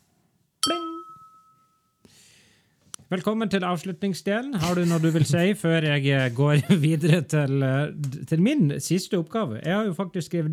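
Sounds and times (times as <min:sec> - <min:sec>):
single bright tap on a glass ringing: 0:00.6 - 0:01.9
speech: 0:03.1 - 0:10.5
laughter: 0:04.6 - 0:05.6, 0:06.4 - 0:07.4.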